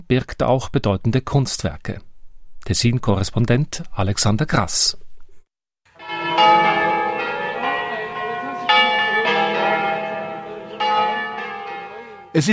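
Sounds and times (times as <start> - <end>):
speech: 0.1 - 5.0
church bells pealing for festive mass: 6.0 - 12.5.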